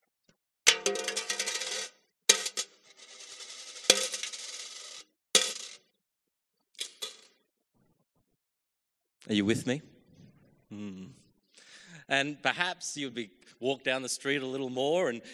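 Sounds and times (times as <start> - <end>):
coins dropping into a coffer: 0.7 - 5.8, 6.8 - 7.3
speech: 9.2 - 9.9, 10.7 - 11.2, 12.1 - 15.3.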